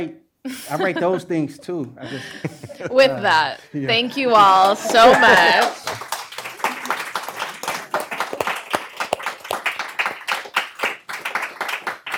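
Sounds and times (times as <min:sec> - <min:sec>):
speech: 0:00.0 - 0:06.0
laughter: 0:00.5 - 0:05.9
audience applause: 0:04.5 - 0:12.1.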